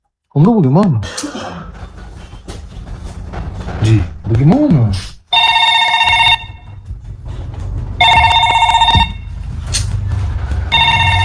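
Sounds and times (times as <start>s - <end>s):
speech: 0.3s - 1.3s, 3.9s - 5.1s
telephone ringing: 5.3s - 6.8s, 8.0s - 9.4s, 10.6s - 11.2s.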